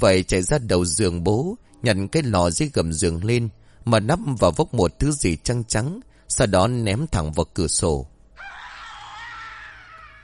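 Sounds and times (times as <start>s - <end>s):
speech: 0.0s - 8.1s
long shrill scream from the door at night: 8.4s - 10.2s.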